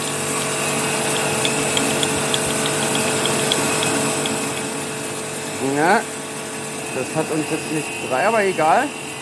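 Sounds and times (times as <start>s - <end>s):
faint regular ticking: 0.0s - 4.8s
power grinder whirring against stone: 0.0s - 6.0s
speech: 5.8s - 6.1s, 7.0s - 9.0s.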